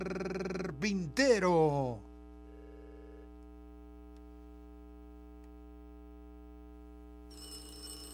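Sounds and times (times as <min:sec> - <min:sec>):
constant low electrical hum: 0:00.0 - 0:08.1
speech: 0:00.8 - 0:02.1
telephone ringing in a short electronic burst: 0:07.3 - 0:08.1.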